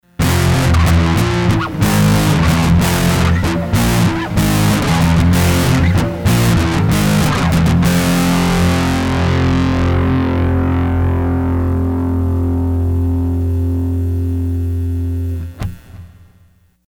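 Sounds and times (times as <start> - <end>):
valve grunge distortion from a Sony HR-GP5: 0.0 - 16.8.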